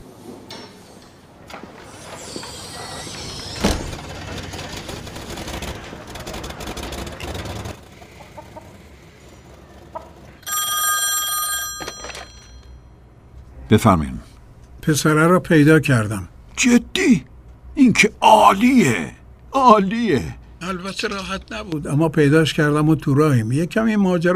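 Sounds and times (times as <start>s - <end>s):
telephone ringing on an outgoing call: 10.3s - 13.1s
speech: 13.7s - 17.2s, 18.0s - 24.3s.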